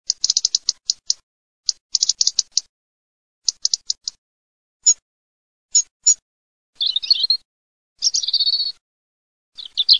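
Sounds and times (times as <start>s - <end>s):
robin bird sound: 0.0s - 2.7s, 3.4s - 4.2s, 4.8s - 5.0s, 5.7s - 6.2s, 6.8s - 8.8s, 9.5s - 9.9s.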